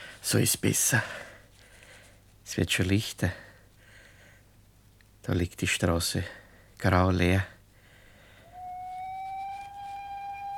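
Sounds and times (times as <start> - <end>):
speech: 0.2 - 1.3, 2.5 - 3.5, 5.3 - 7.5
train whistle from a railway station: 8.4 - 10.5.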